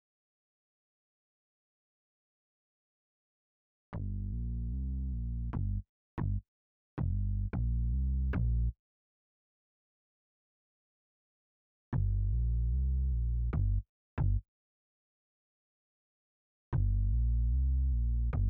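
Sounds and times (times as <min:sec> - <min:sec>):
deep round synth bass: 0:04.0 - 0:06.4, 0:07.1 - 0:08.7, 0:12.0 - 0:14.4, 0:16.8 - 0:18.4.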